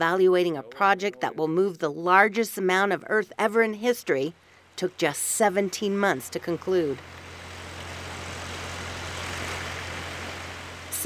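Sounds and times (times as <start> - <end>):
speech: 0.0 - 7.2
engine pumping water from a lake: 6.0 - 11.0.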